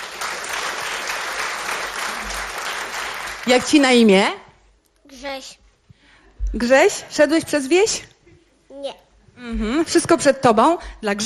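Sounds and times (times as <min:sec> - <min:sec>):
audience applause: 0:00.0 - 0:03.8
speech: 0:03.4 - 0:04.4, 0:05.2 - 0:05.6, 0:06.5 - 0:08.1, 0:08.8 - 0:11.2.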